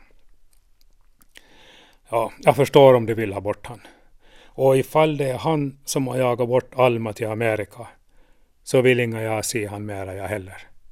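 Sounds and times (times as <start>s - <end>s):
small wet mouth smacks and sips: 0.3s - 1.5s
speech: 2.1s - 4.0s, 4.6s - 8.0s, 8.7s - 10.7s.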